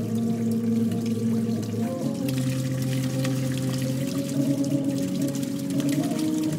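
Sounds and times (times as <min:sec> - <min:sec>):
reedy organ-like tones from a water-jet instrument played by finger: 0:00.0 - 0:06.5.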